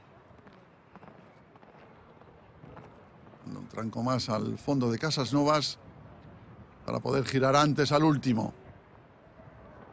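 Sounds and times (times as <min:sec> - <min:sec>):
broad wash of noise: 0:00.0 - 0:09.9
speech: 0:03.5 - 0:05.8, 0:06.9 - 0:08.6.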